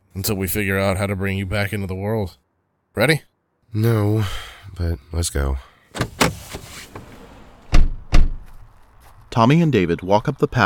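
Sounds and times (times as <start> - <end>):
speech: 0.2 - 2.4, 3.0 - 6.4, 9.4 - 10.6
house door opening with dull thunks and clunks: 6.0 - 9.2.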